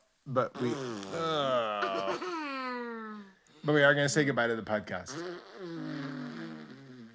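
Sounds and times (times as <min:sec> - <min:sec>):
speech: 0:00.3 - 0:01.2, 0:03.7 - 0:05.5
drawn-out buzzy fart: 0:00.5 - 0:01.8, 0:05.1 - 0:07.1.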